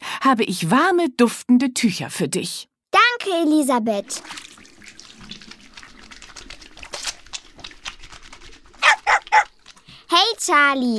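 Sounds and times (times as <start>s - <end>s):
speech: 0.2s - 4.4s, 10.4s - 10.9s
tap water running and splashing while rinsing a dog: 3.8s - 10.9s.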